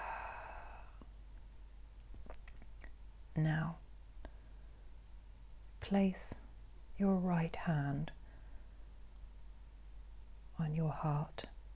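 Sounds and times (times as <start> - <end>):
breath in through the nose and out through the mouth: 0.0 - 1.1, 8.2 - 9.0
quiet low hum: 0.0 - 11.7
faint small clicks: 1.0 - 3.0
speech: 3.4 - 3.8, 5.8 - 6.4, 7.0 - 8.2, 10.6 - 11.6.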